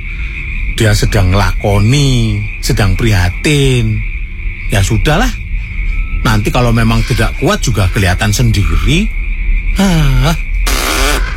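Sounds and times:
constant low hum: 0:00.0 - 0:11.3
speech: 0:00.8 - 0:04.1, 0:04.7 - 0:05.4, 0:06.2 - 0:09.2, 0:09.8 - 0:10.5
human voice imitating farts: 0:10.2 - 0:11.3.

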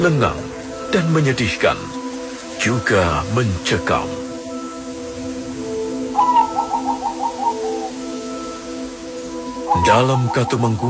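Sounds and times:
speech: 0:00.0 - 0:02.0, 0:02.6 - 0:04.2, 0:09.7 - 0:10.8
zebra doves cooing: 0:05.6 - 0:10.8.

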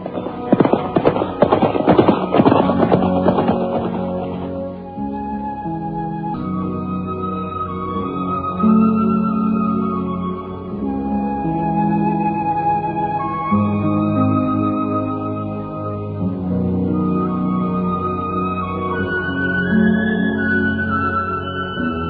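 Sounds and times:
hooves of horses loaded with kapok clip-clopping at Candi Kidal temple: 0:00.0 - 0:04.7
steady tonal backdrop: 0:00.0 - 0:22.0.

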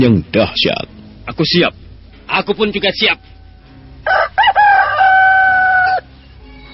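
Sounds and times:
speech: 0:00.0 - 0:03.3
rooster crowing: 0:03.2 - 0:06.1.

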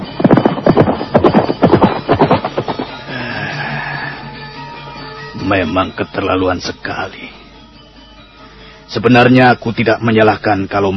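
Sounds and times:
horse hooves galloping away from an official's residence: 0:00.0 - 0:03.1
speech: 0:05.5 - 0:07.4, 0:08.9 - 0:10.9.

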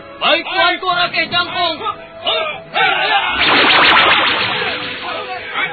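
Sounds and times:
speech: 0:00.2 - 0:04.1
flaming arrows shot by soldiers whooshing into the air: 0:03.4 - 0:05.6.

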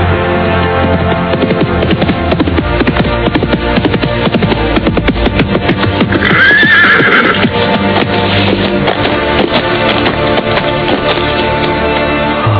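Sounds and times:
ridden horse's hooves clip-clopping: 0:00.1 - 0:12.4
horse whinnying neigh: 0:06.1 - 0:07.5.

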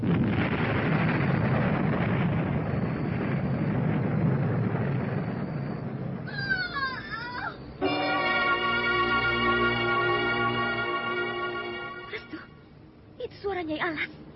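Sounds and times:
explosion on a house roof with heavy low rumble: 0:00.0 - 0:06.7, 0:07.8 - 0:12.5
crackling debris: 0:00.0 - 0:12.5
high wavering cat-like cries: 0:06.3 - 0:12.6.

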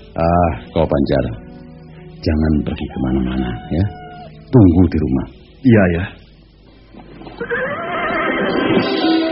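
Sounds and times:
speech: 0:00.2 - 0:01.6, 0:02.2 - 0:06.2
jet-black horse neighing: 0:07.4 - 0:09.2.

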